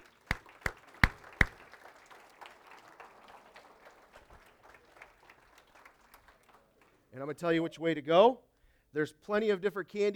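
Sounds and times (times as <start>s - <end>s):
crowd applause: 0.0s - 6.9s
handclaps: 0.0s - 7.0s
speech: 7.2s - 10.1s.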